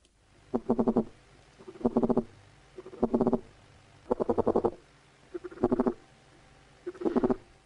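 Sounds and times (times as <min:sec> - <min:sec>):
caterpillar calls mimicking an ant queen: 0:00.5 - 0:03.5, 0:04.1 - 0:06.0, 0:06.8 - 0:07.5.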